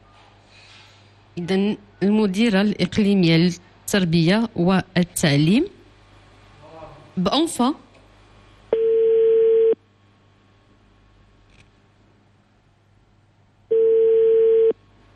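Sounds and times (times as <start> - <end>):
faint hum: 0.0 - 15.1
speech: 1.4 - 5.8, 7.2 - 7.8
telephone ringback tone as a call waits to be answered: 8.8 - 9.8, 13.7 - 14.8.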